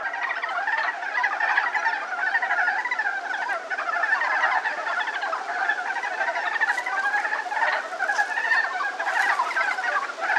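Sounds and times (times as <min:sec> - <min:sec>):
Japanese brown frog calling: 0:00.0 - 0:10.3.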